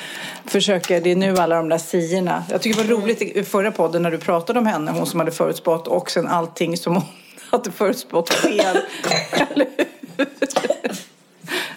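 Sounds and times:
speech: 0.5s - 11.0s
person coughing and gasping after choking while laughing: 8.3s - 11.1s
laughter: 9.4s - 11.1s
long wheezy breath: 11.4s - 11.7s.

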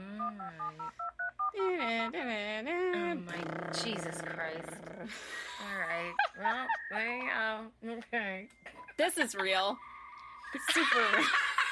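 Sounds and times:
telephone dialing dual-tone DTMF beeps: 0.2s - 1.6s
speech: 1.6s - 9.9s, 10.5s - 11.5s.

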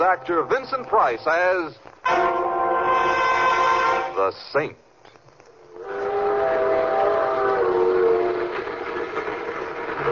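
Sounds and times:
moving train rumbling and clattering: 0.0s - 1.3s, 7.3s - 10.1s
speech: 0.0s - 2.5s, 4.2s - 4.8s
train whistle sounding a long sustained chord: 2.0s - 4.2s, 5.8s - 9.0s.

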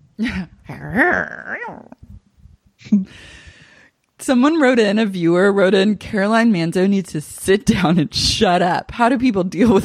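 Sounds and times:
speech: 0.2s - 1.9s, 4.2s - 9.8s
person mimicking a dog barking: 0.7s - 2.0s.

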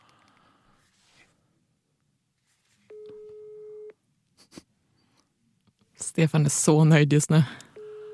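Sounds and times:
buzzing ringback tone over a speakerphone: 2.9s - 4.0s, 7.8s - 8.1s
speech: 6.2s - 7.7s.

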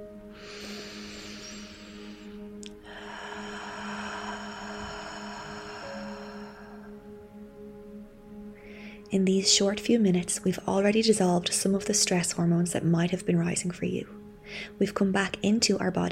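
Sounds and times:
slow breath exhaled through the mouth with a gently restricted throat: 0.4s - 7.0s
speech: 9.1s - 16.1s.

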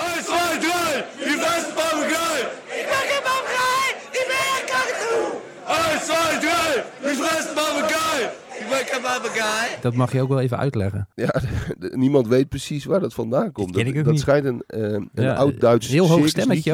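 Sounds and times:
large crowd of football supporters chanting in a stadium: 0.0s - 10.0s
speech: 9.0s - 16.7s.

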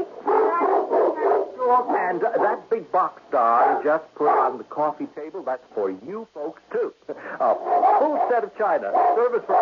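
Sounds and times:
Doberman Pinscher barking: 0.2s - 1.6s, 3.6s - 4.6s, 7.4s - 9.6s
speech: 1.8s - 9.6s.

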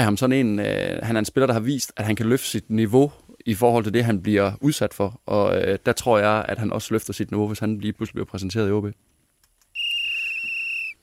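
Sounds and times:
speech: 0.0s - 9.2s
long shrill referee's whistle blast: 9.8s - 11.0s.

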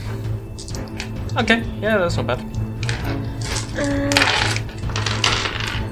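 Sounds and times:
speech: 1.4s - 2.7s, 3.8s - 4.4s
dice clattering across a hard tabletop: 2.8s - 5.9s.

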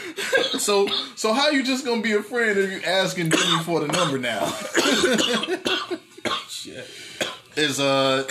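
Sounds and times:
person having a coughing fit: 0.2s - 1.2s, 3.3s - 6.6s, 7.2s - 7.5s
speech: 0.6s - 6.1s, 7.6s - 8.3s.

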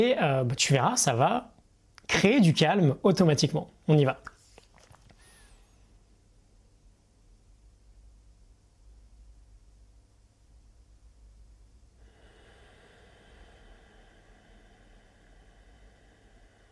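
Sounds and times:
speech: 0.0s - 1.5s, 2.1s - 4.3s
slow quiet breathing through the nose during a calming breathing exercise: 12.0s - 16.7s.

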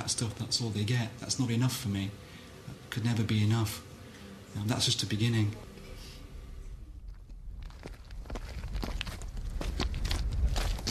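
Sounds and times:
low outdoor rumble: 0.0s - 10.8s
speech: 0.1s - 2.3s, 2.9s - 3.9s, 4.5s - 5.7s
footsteps crunching on a rough mountain footpath: 7.0s - 10.8s.

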